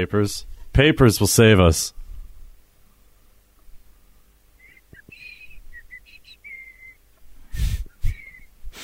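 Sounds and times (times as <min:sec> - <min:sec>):
speech: 0:00.0 - 0:02.0
person whistling short high notes: 0:04.6 - 0:07.0, 0:07.6 - 0:08.5.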